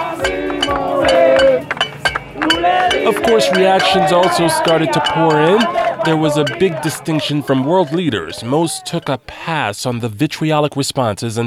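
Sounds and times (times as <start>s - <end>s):
pots and pans banged in celebration in the streets: 0.0s - 9.2s
speech: 3.2s - 11.4s.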